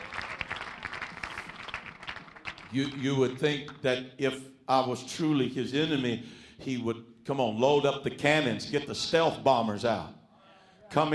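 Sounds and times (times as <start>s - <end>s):
church congregation clapping hands during a worship service: 0.0s - 4.0s
speech: 2.7s - 10.2s, 10.9s - 11.1s.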